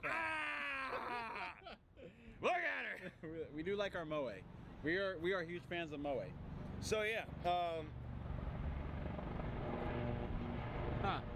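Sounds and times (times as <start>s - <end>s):
speech: 1.0s - 8.0s, 11.0s - 11.3s
military helicopters flying overhead: 5.8s - 11.3s.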